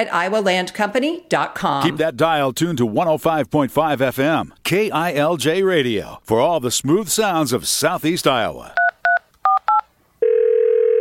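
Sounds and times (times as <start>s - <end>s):
speech: 0.0s - 8.9s
long steady telephone tone: 9.1s - 10.9s.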